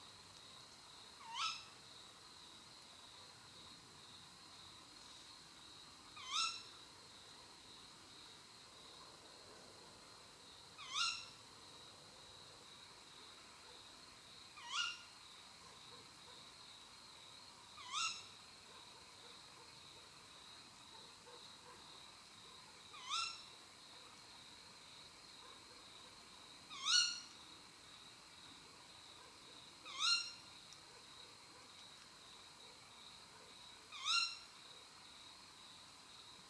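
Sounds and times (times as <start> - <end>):
female tawny owl Strix aluco calling: 1.3 - 1.6, 6.2 - 6.6, 10.8 - 11.2, 14.6 - 15.0, 17.8 - 18.2, 23.0 - 23.4, 26.7 - 27.2, 29.9 - 30.4, 33.9 - 34.4.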